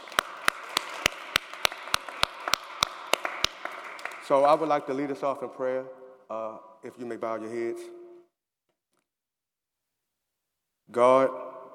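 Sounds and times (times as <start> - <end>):
audience applause: 0.0 - 4.8
sharp evenly spaced hand claps: 0.0 - 5.0
speech: 4.3 - 8.0, 10.9 - 11.4.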